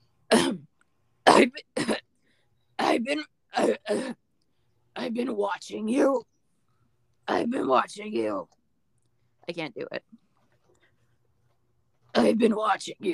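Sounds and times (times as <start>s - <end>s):
raspy smoker's cough: 0.3s - 2.1s, 2.8s - 4.3s
speech: 1.4s - 1.9s, 2.9s - 4.2s, 5.0s - 6.3s, 7.3s - 8.6s, 9.5s - 10.2s, 12.2s - 13.1s.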